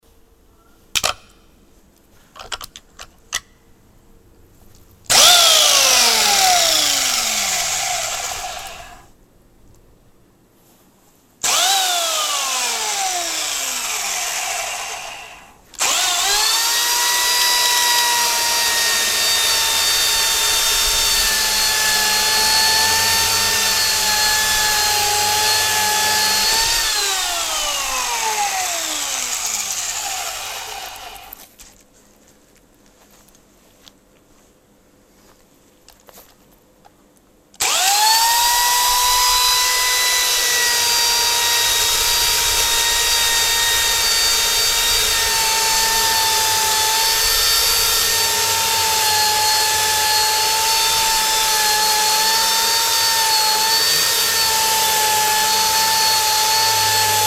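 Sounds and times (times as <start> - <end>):
chainsaw: 5.1 - 9.1, 11.4 - 31.4, 37.6 - 57.2.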